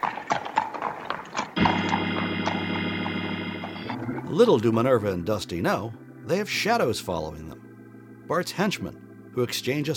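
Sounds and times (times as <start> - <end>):
horse hooves clip-clopping as horses pull a wagon: 0.0 - 4.8
steady droning tone: 1.6 - 9.9
speech: 4.3 - 7.6, 8.3 - 9.9.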